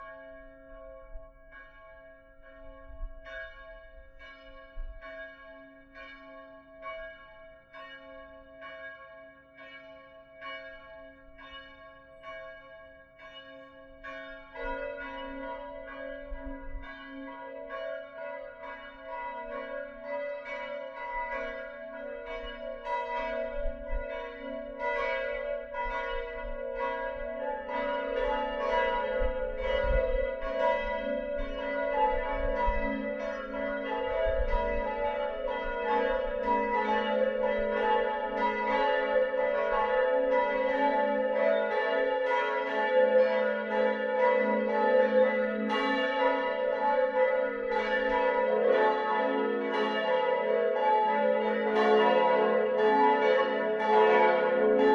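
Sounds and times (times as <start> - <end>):
parish church bells ringing: 0.0 - 54.9.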